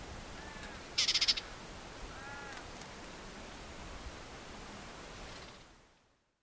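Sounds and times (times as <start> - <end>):
steady hiss: 0.0 - 6.4
white-throated warbler harsh rattle call: 0.4 - 1.5.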